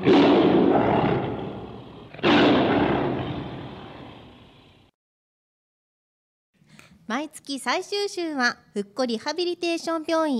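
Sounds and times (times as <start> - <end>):
tiger roar sound effect: 0.0 - 4.8
speech: 7.1 - 10.3.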